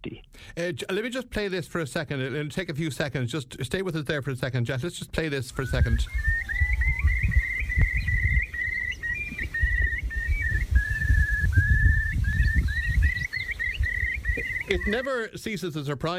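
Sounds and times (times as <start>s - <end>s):
speech: 0.0s - 6.6s, 14.8s - 16.1s
curlew calling: 5.5s - 15.1s.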